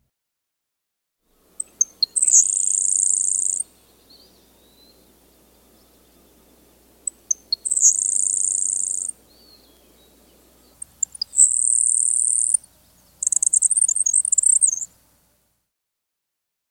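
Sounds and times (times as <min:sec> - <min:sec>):
grasshopper sparrow singing: 0:01.4 - 0:15.1.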